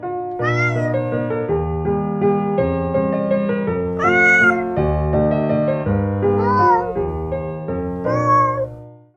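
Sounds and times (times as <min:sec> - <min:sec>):
piano: 0:00.0 - 0:09.1
cats meowing: 0:00.4 - 0:01.5, 0:03.9 - 0:05.0, 0:06.4 - 0:08.8.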